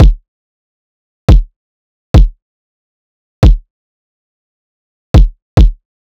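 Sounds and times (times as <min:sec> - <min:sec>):
riddim kick drum loop: 0:00.0 - 0:00.2, 0:01.3 - 0:01.5, 0:02.2 - 0:02.4, 0:03.4 - 0:03.7, 0:05.2 - 0:05.8.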